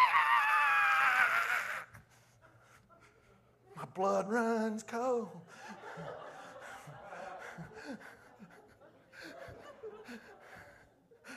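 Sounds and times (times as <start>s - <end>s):
person imitating an eagle's screech: 0.0s - 1.9s
speech: 4.0s - 6.2s
laughter: 5.4s - 11.3s.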